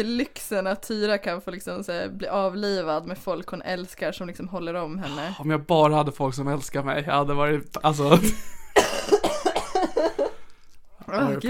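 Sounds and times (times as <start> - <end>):
speech: 0.0 - 8.6, 11.1 - 11.4
person coughing: 8.6 - 10.2.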